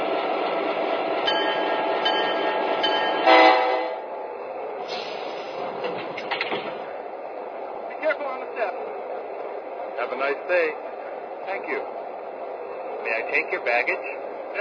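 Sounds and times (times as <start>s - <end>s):
passenger train rolling into a station track with rumble of wheels and cars: 0.0s - 14.5s
brief horn-like blast of a passenger train: 3.2s - 4.1s
speech: 13.4s - 14.2s.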